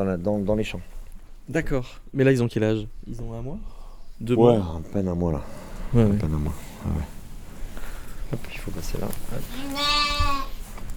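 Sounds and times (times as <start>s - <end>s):
speech: 0.0s - 7.2s, 8.3s - 10.2s
faint rustle of movement: 0.0s - 10.9s
sheep bleating in a pen: 9.6s - 10.6s.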